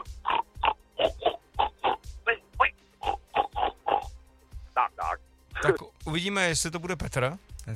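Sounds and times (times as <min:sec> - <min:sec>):
man imitating a pig grunting and oinking in a pig-grunting contest: 0:00.0 - 0:02.4, 0:03.0 - 0:04.1
speech: 0:05.6 - 0:07.7.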